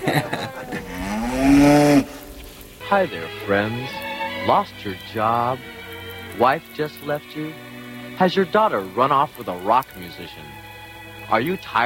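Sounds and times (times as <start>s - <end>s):
laughter: 0.0s - 1.3s
cow mooing: 0.7s - 2.4s
speech: 2.9s - 5.8s, 6.4s - 10.6s, 11.3s - 11.8s.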